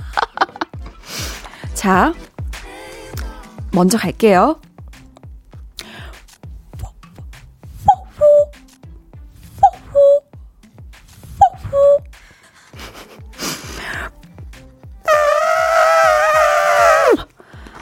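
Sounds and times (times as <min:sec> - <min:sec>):
laughter: 0:00.0 - 0:00.7, 0:12.6 - 0:13.8
speech: 0:01.8 - 0:02.3, 0:03.7 - 0:04.6
voice imitating cuckoo calls: 0:07.9 - 0:08.5, 0:09.6 - 0:10.3, 0:11.4 - 0:12.1, 0:15.1 - 0:17.2.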